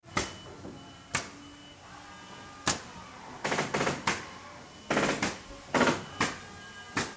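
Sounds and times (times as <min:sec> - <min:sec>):
air nailer firing into wood: 0:01.1 - 0:01.4, 0:02.6 - 0:04.3, 0:04.9 - 0:07.1.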